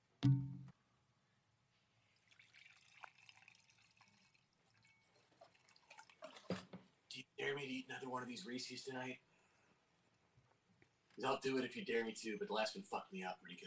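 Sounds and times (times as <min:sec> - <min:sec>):
speech: 0:00.2 - 0:00.5, 0:07.5 - 0:09.3, 0:11.2 - 0:13.6
knock: 0:00.2 - 0:00.7
alcohol pouring into a glass: 0:02.2 - 0:06.6.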